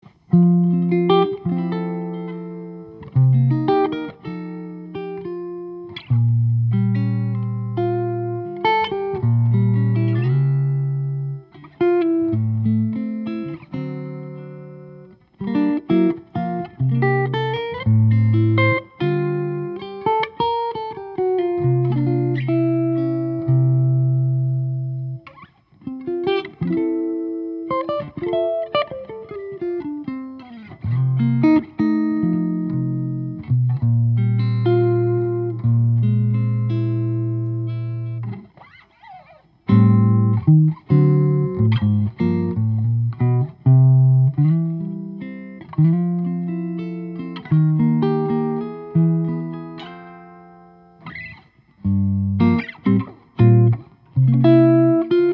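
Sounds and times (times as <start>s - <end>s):
maple and spruce electric archtop guitar through an amp: 0.0s - 55.3s.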